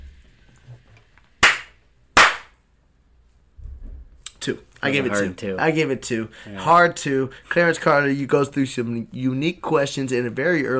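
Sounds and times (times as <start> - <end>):
hard hand slaps: 1.4 - 2.6
speech: 4.4 - 10.7.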